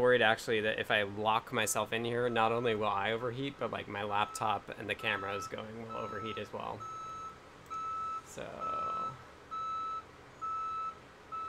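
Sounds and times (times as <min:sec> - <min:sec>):
speech: 0:00.0 - 0:07.0, 0:08.4 - 0:08.8
bulldozer reversing beeps: 0:04.2 - 0:11.4.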